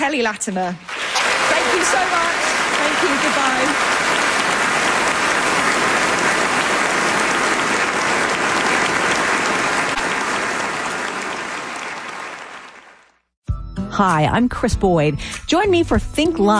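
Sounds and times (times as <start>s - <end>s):
speech: 0.0s - 4.3s, 14.0s - 16.5s
large audience applauding: 0.8s - 13.3s.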